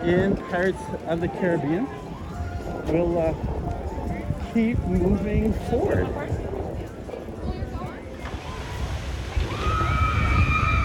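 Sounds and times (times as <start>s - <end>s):
speech: 0.0s - 2.1s, 2.7s - 3.8s, 4.5s - 6.4s
indistinct crowd voices: 0.0s - 10.8s
log flume boats splashing through a water channel: 7.9s - 10.8s.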